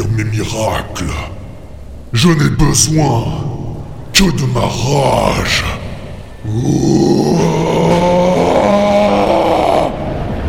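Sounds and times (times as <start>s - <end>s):
speech: 0.2s - 1.4s, 2.1s - 3.6s, 4.2s - 5.8s, 6.4s - 8.6s
powerful roaring howl: 6.4s - 10.4s.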